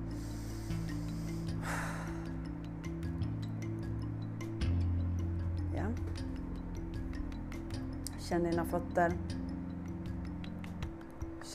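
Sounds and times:
slow airy breath during a guided meditation: 0.0 - 2.6
soft sustained musical drone: 0.0 - 11.5
speech: 8.3 - 9.4.

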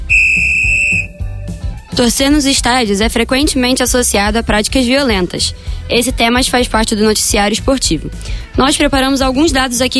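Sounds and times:
referee's kickoff whistle blast: 0.0 - 1.2
speech: 2.0 - 9.9.

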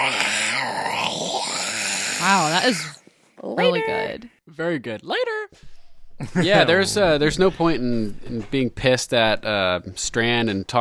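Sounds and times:
person imitating a zombie growl: 0.0 - 3.0
speech: 2.2 - 10.7.

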